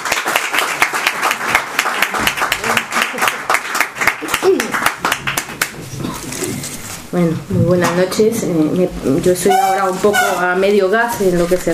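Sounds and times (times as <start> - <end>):
audience applause welcoming a guest speaker at a talk: 0.0 - 6.0
speech: 7.1 - 11.7.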